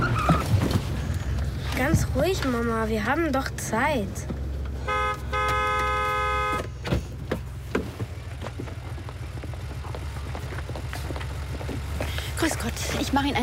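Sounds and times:
low idling engine rumble: 0.0s - 13.4s
speech: 1.8s - 4.3s, 12.4s - 13.4s
car horn honking: 4.8s - 6.9s.

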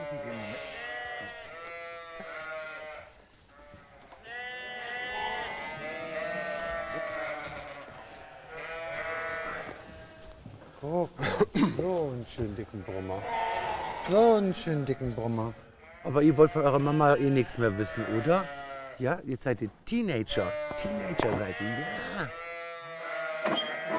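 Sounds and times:
ram lambs bleating in a sheep herd: 0.0s - 10.4s, 12.7s - 19.0s, 20.3s - 23.9s
speech: 10.9s - 13.5s, 14.1s - 22.4s.

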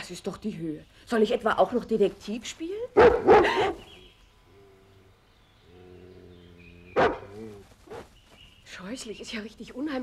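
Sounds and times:
speech: 0.1s - 3.9s, 8.7s - 10.0s
roaming poaching dog barking: 3.0s - 3.8s, 7.0s - 8.1s.

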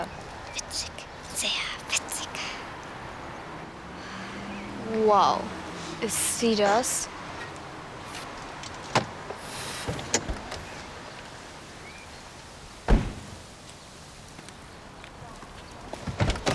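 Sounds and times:
hiss: 0.0s - 16.5s
speech: 5.1s - 7.2s
door clunking and rattling as someone fumbles to open it: 9.9s - 10.8s, 12.9s - 13.3s, 16.0s - 16.5s.

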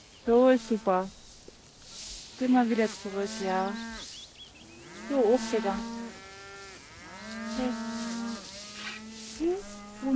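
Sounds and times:
speech: 0.2s - 1.2s, 2.4s - 4.1s, 5.1s - 6.0s, 7.6s - 7.8s
escaped calves mooing while driven back from pasture: 2.8s - 10.1s.

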